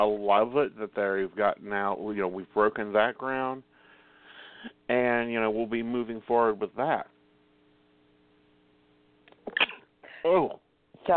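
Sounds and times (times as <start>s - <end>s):
speech: 0.0s - 3.7s, 4.6s - 7.1s, 10.2s - 11.1s
single sneeze: 9.5s - 9.9s.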